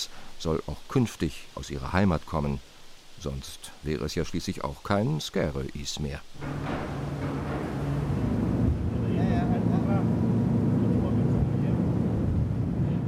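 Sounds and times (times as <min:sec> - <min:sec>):
speech: 0:00.4 - 0:07.2
large car ferry engines rumbling while docking in harbour: 0:06.4 - 0:13.0.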